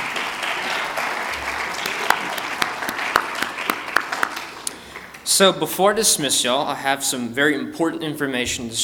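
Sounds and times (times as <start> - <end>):
room full of people applauding: 0.0 - 5.1
speech: 5.4 - 8.8.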